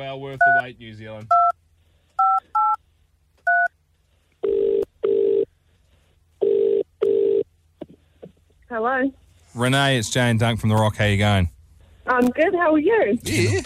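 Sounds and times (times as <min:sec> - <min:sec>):
speech: 0:00.0 - 0:01.5, 0:08.7 - 0:13.6
telephone ringing tones: 0:04.4 - 0:05.5, 0:06.4 - 0:07.4.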